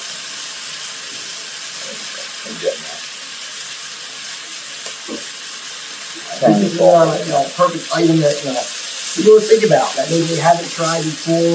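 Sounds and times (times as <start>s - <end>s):
scallops searing in a pan over a very hot flame: 0.0s - 11.5s
speech: 6.4s - 11.5s.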